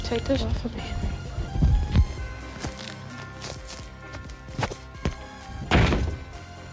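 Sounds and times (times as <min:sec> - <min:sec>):
speech: 0:00.1 - 0:01.2
irregular footsteps thudding across a floor: 0:03.4 - 0:06.4
door slamming with a heavy thunk: 0:05.6 - 0:06.4.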